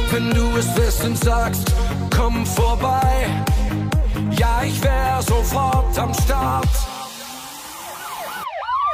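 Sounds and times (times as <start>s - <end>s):
speech: 0.2s - 6.9s
emergency vehicle siren wailing: 6.9s - 8.9s.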